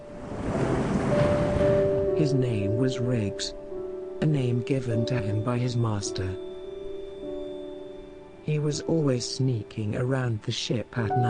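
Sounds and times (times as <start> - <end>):
large ocean waves crashing: 0.0 - 2.7
wind: 0.0 - 11.2
speech: 2.2 - 3.6, 4.2 - 6.5, 8.5 - 11.2.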